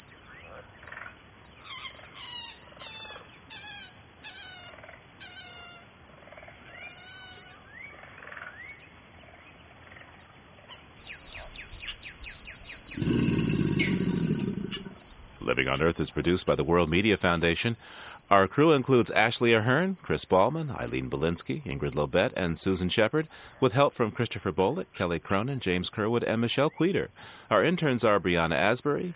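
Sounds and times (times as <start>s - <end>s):
constant high insect drone in a wetland: 0.0s - 29.1s
chirping bird calls in a bayou wetland: 13.0s - 14.9s
low rumbling alligator grunt: 13.0s - 15.0s
speech: 15.7s - 29.1s.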